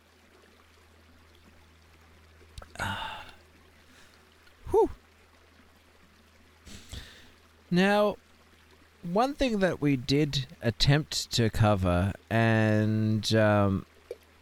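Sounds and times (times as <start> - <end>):
faint steady hum: 0.0 - 14.4
satisfied exhaled breath: 2.8 - 4.2, 6.7 - 7.4
sipping from a bottle with a slosh of liquid: 6.7 - 7.1
speech: 7.7 - 8.2, 9.0 - 13.9.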